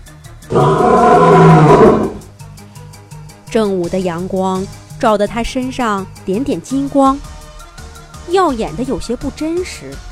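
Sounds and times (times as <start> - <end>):
faint rhythmic background: 0.0 - 10.1
speech: 0.5 - 1.0, 3.6 - 7.3, 8.3 - 10.1
angry lion roaring: 0.5 - 2.3.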